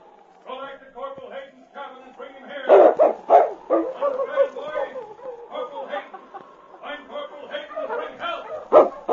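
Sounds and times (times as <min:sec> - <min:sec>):
laughter: 0:02.4 - 0:09.1
large dog barking at a cabin: 0:02.6 - 0:06.0, 0:07.4 - 0:09.1
large dog whining: 0:02.7 - 0:05.6, 0:07.5 - 0:09.1.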